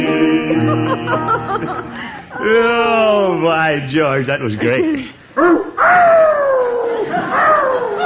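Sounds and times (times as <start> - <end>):
laughter: 0.1 - 2.8, 6.6 - 8.0
speech: 1.5 - 6.1
tied-up dog barking, yelping and howling outside: 5.4 - 8.0.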